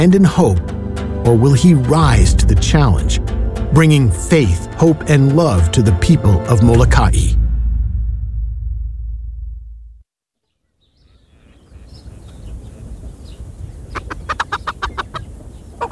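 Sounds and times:
speech: 0:00.0 - 0:07.4
low rumble: 0:00.6 - 0:10.0
chickens clucking while called over to feed on corn: 0:13.7 - 0:15.9.

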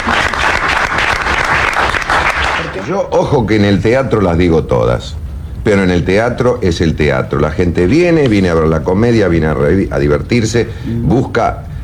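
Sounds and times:
audience applause for a comedian: 0:00.0 - 0:03.0
speech: 0:02.9 - 0:11.7.

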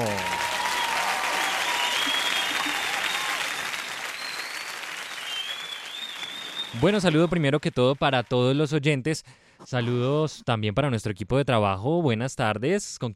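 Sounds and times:
faint whistles and cheers: 0:00.0 - 0:07.3
crowd applauding on a radio program: 0:00.0 - 0:08.7
speech: 0:06.8 - 0:13.1.

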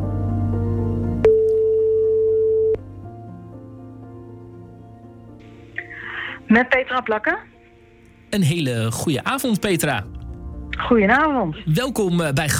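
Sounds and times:
soft music bed: 0:00.0 - 0:12.5
telephone ringing tone as a call is placed: 0:01.2 - 0:02.8
speech: 0:06.5 - 0:07.5, 0:08.3 - 0:12.5.

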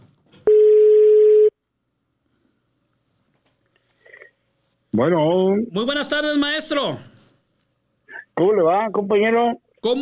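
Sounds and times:
telephone tone while placing a call: 0:00.4 - 0:01.6
speech: 0:05.0 - 0:07.1, 0:08.4 - 0:10.0.

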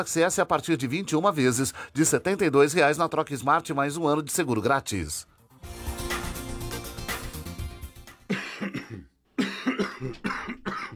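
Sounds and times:
speech: 0:00.0 - 0:05.8
harsh coughing: 0:08.3 - 0:10.9.

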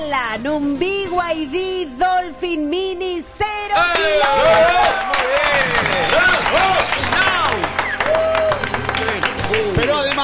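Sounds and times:
speech: 0:00.0 - 0:07.0
crowd shouting and cheering excitedly: 0:03.6 - 0:10.2
crowd applause: 0:03.8 - 0:10.2.

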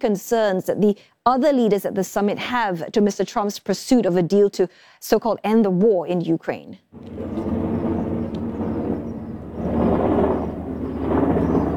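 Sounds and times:
speech: 0:00.0 - 0:07.5
helicopter engine and rotor roar overhead: 0:07.0 - 0:11.7.

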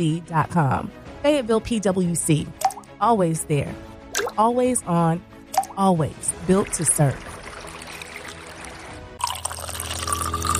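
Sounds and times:
speech: 0:00.0 - 0:07.3
soft low music: 0:00.0 - 0:10.5
water running from a tap: 0:06.4 - 0:10.5.

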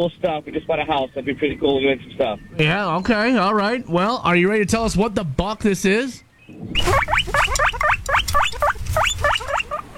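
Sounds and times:
speech: 0:00.0 - 0:07.9
guinea pig squeaking: 0:06.8 - 0:09.9.

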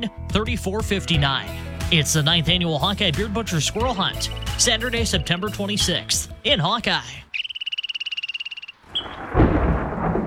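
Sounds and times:
speech: 0:00.0 - 0:07.3
rapid pulsing frog trill: 0:04.1 - 0:05.0, 0:07.3 - 0:09.3
deep rolling thunder: 0:08.9 - 0:10.2.

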